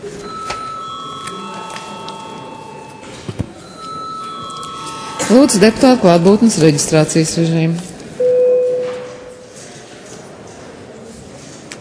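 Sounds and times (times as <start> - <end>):
electric bell ringing in a parliament chamber: 0.3 - 6.5
speech: 5.3 - 7.9.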